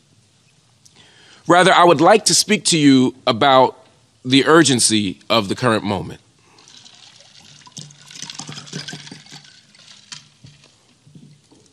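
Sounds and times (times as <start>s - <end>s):
speech: 1.5s - 6.2s
sips and gulps of drinking water: 6.4s - 11.7s
water pouring into a glass: 6.5s - 11.7s.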